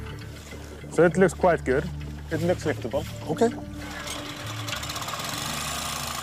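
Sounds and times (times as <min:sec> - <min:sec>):
speech: 0:01.0 - 0:03.7
air compressor pumping air into fabric lift pontoons: 0:03.7 - 0:06.2.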